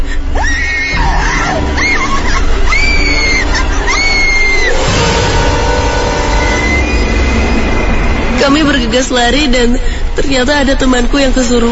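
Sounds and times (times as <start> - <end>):
rumbling background: 0.0 - 11.7
steady noisy roar: 0.2 - 11.7
very loud shrill screaming: 0.4 - 8.6
speech: 8.5 - 11.7.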